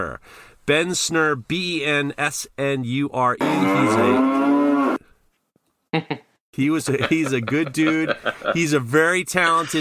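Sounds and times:
speech: 0:00.0 - 0:04.8, 0:06.0 - 0:09.7
cow mooing: 0:03.4 - 0:05.0
laughter: 0:06.0 - 0:08.8.

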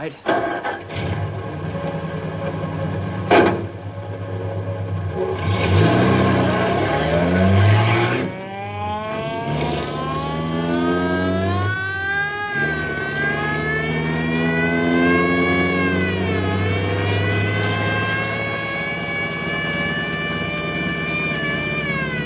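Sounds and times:
car engine revving driving down a mountain road: 0:00.5 - 0:22.2.

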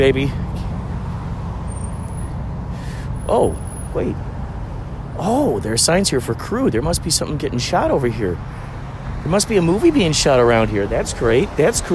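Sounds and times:
speech: 0:00.0 - 0:00.4, 0:03.3 - 0:04.3, 0:05.2 - 0:08.6, 0:09.2 - 0:11.9
truck passing on a street: 0:00.0 - 0:11.9.

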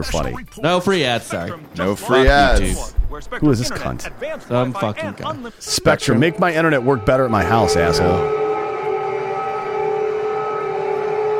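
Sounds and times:
speech: 0:00.0 - 0:08.4
air raid siren wailing in Ukraine at the start of the war: 0:05.6 - 0:11.3.

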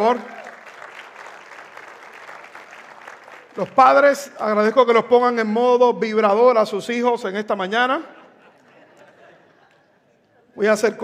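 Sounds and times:
speech: 0:00.0 - 0:00.4, 0:03.6 - 0:08.2, 0:10.6 - 0:11.0
audience applauding: 0:00.0 - 0:04.2
laughter: 0:07.7 - 0:10.9.

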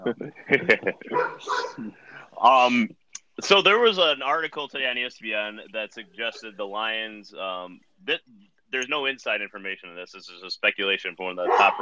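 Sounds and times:
laughter: 0:00.0 - 0:02.8
speech: 0:00.1 - 0:11.8
dog barking in sharp yaps: 0:01.1 - 0:01.8, 0:11.4 - 0:11.8.

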